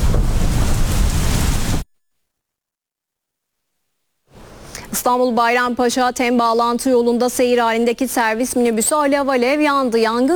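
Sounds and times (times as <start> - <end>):
heavy downpour drenching a crowd circling the Kaaba: 0.0 - 1.8
speech: 5.0 - 10.3.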